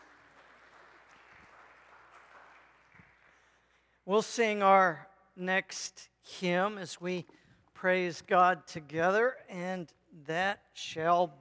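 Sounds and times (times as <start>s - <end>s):
audience applauding: 0.0s - 3.6s
speech: 4.1s - 11.3s.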